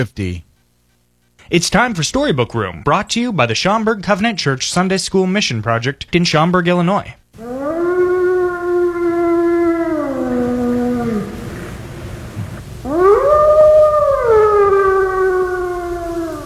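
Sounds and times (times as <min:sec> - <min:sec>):
speech: 0:00.0 - 0:00.5, 0:01.5 - 0:07.5
gray wolf howling: 0:07.4 - 0:16.4.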